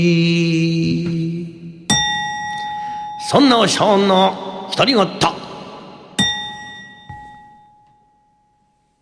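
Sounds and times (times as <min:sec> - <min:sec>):
speech: 0:00.0 - 0:01.1, 0:03.3 - 0:05.4
large temple bell being struck: 0:01.9 - 0:05.2, 0:06.0 - 0:08.9.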